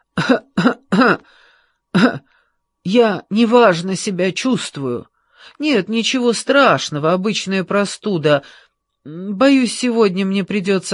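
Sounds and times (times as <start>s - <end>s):
man fake coughing: 0.1s - 1.3s, 1.9s - 2.3s
speech: 0.3s - 1.4s, 2.8s - 10.9s.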